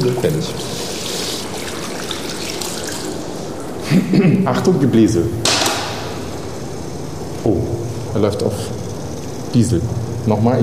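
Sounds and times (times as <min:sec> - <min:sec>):
speech: 0:00.0 - 0:00.9, 0:03.9 - 0:05.5, 0:07.4 - 0:08.9, 0:09.5 - 0:10.6
running tap water: 0:00.0 - 0:03.8.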